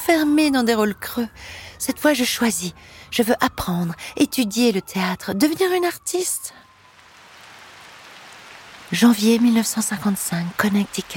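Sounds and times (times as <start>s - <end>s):
speech: 0.1s - 6.6s, 8.9s - 11.1s
steady rain falling on a garden: 6.8s - 11.1s.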